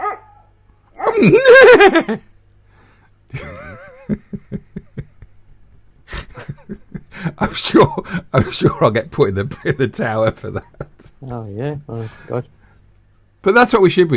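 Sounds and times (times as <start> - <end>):
dog bark-whining, yelping, huffing and barking: 0.0 - 1.4
laughter: 1.1 - 2.3, 3.3 - 5.4, 6.1 - 11.2
speech: 1.1 - 2.3, 3.3 - 3.5, 7.2 - 12.6, 13.4 - 14.1.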